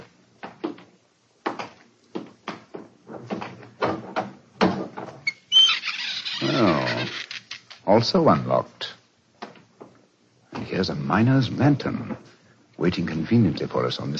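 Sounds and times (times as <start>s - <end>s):
crude door of new wood creaking open: 3.1s - 7.9s
speech: 7.9s - 8.9s, 10.8s - 12.2s, 12.8s - 14.1s.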